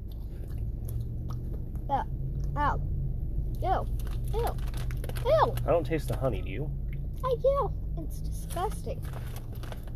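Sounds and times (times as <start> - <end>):
crunching and chewing of honey-flavored cheese curls: 0.0 - 2.6, 3.9 - 5.6, 9.0 - 9.9
speech: 1.9 - 3.0, 3.6 - 9.5.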